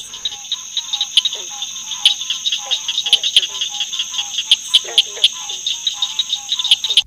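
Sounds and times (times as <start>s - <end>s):
high-pitched insect drone: 0.0s - 7.0s
southern cricket frog calling with sharp metallic clicks: 0.0s - 7.0s.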